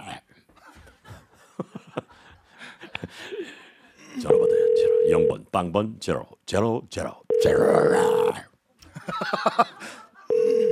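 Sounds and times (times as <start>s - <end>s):
laughter: 0.6s - 4.2s, 8.8s - 10.6s
steady electronic phone tone through a handset: 4.3s - 5.3s, 7.3s - 8.4s, 10.3s - 10.6s
speech: 5.1s - 8.5s.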